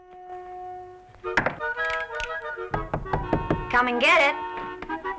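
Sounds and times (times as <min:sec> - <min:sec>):
man crashing through wooden banisters: 0:01.3 - 0:03.9
man knocking on a door: 0:02.7 - 0:03.7
speech: 0:03.8 - 0:04.5.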